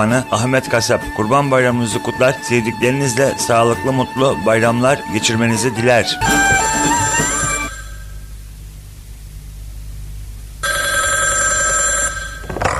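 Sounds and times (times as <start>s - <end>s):
speech: 0.0s - 6.5s
static hiss: 0.0s - 12.7s
telephone bell ringing with shrill electronic rings: 6.1s - 8.0s, 10.6s - 12.5s.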